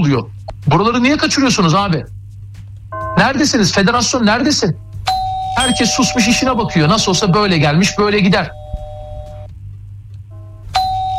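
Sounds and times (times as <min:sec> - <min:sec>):
speech: 0:00.0 - 0:02.2, 0:03.2 - 0:04.8, 0:05.6 - 0:08.6
electronic doorbell chiming in a radio studio: 0:05.1 - 0:09.5, 0:10.8 - 0:11.1.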